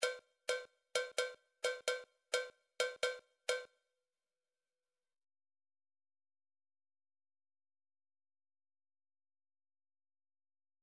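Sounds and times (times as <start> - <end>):
cowbell hits: 0.0 - 3.7.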